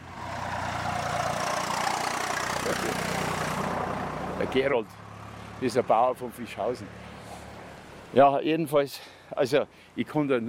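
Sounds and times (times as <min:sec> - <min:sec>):
tractor engine rumbling: 0:00.0 - 0:08.2
speech: 0:02.7 - 0:03.1, 0:04.4 - 0:07.0, 0:08.1 - 0:10.4.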